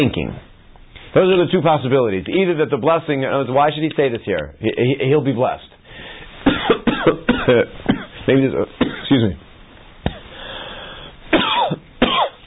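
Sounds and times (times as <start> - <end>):
speech: 0.0 - 0.5, 1.2 - 5.7, 7.0 - 9.4
person in a harsh hacking coughing fit: 6.5 - 8.2, 8.8 - 9.2, 10.1 - 10.3, 11.3 - 12.4.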